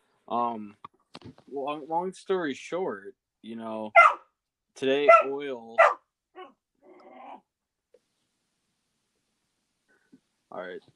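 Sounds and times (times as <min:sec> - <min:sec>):
speech: 0:00.3 - 0:04.2, 0:04.8 - 0:05.9, 0:10.5 - 0:10.9
new puppy barking: 0:03.9 - 0:04.3, 0:05.0 - 0:06.6.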